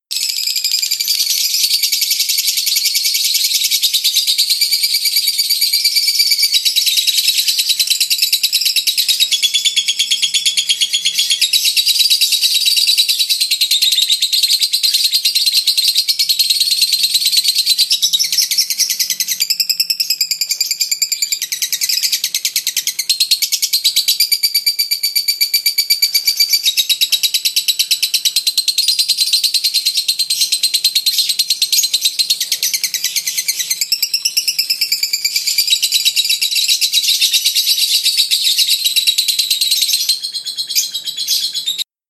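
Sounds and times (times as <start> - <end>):
lovebird: 0.1 - 41.9.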